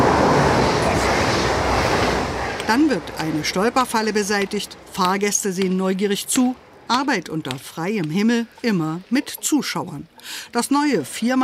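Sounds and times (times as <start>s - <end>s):
ICE high-speed train rushing past at a railway station: 0.0s - 5.3s
speech: 2.7s - 11.4s.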